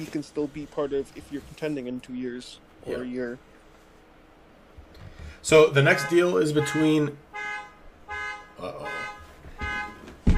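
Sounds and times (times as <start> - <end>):
speech: 0.0 - 3.5, 5.4 - 7.2
car alarm blaring: 5.7 - 10.3
thump: 10.0 - 10.3.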